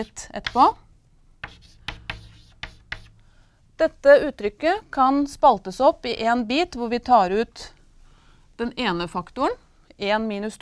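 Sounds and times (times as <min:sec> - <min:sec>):
handwriting strokes writing out a math expression: 0:00.0 - 0:00.8, 0:01.4 - 0:03.2
speech: 0:00.0 - 0:00.8, 0:03.8 - 0:07.8, 0:08.6 - 0:10.6.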